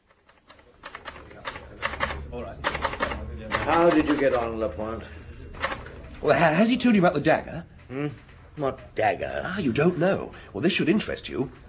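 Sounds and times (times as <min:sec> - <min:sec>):
typewriter keystrokes: 0:00.0 - 0:04.5, 0:05.6 - 0:05.8
speech: 0:02.4 - 0:02.8, 0:03.6 - 0:05.2, 0:06.2 - 0:11.6.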